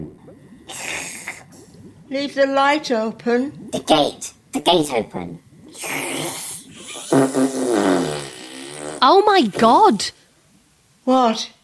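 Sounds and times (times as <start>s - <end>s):
speech: 2.1s - 6.4s, 9.0s - 10.2s, 11.1s - 11.6s
loud rumbling fart with sputtering buzzy pulses: 5.8s - 9.0s.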